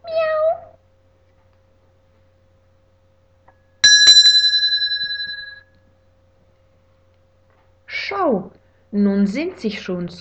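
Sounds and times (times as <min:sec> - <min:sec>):
cat meowing: 0:00.0 - 0:00.8
bright bell ringing: 0:03.8 - 0:05.6
speech: 0:08.3 - 0:10.1.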